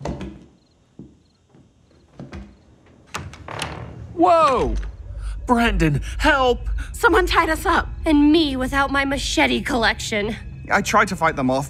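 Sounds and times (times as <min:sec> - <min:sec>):
house door to stairs creaking open: 0:01.5 - 0:05.2
speech: 0:04.2 - 0:04.9, 0:05.5 - 0:11.6.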